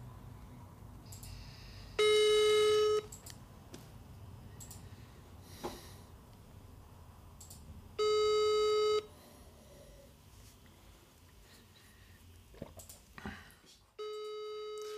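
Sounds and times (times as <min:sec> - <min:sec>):
faint breathing: 0:01.0 - 0:02.0, 0:04.5 - 0:06.2, 0:09.1 - 0:12.3, 0:13.2 - 0:13.8
telephone ringback tone while placing a phone call: 0:02.0 - 0:03.1, 0:08.0 - 0:09.1, 0:14.0 - 0:14.9.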